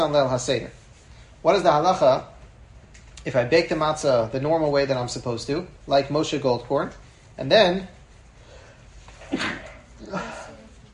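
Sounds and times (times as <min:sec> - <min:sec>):
speech: 0:00.0 - 0:00.8, 0:01.4 - 0:02.3, 0:03.2 - 0:08.0, 0:09.3 - 0:10.4
person sneezing into a microphone: 0:09.2 - 0:10.8.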